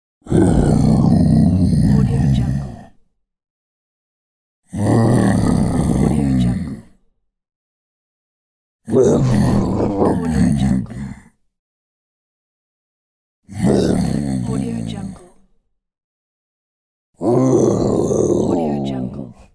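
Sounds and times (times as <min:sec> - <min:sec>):
cartoon bear grunting and growling: 0:00.2 - 0:03.0, 0:04.7 - 0:07.0, 0:08.9 - 0:11.3, 0:13.5 - 0:15.4, 0:17.2 - 0:19.5.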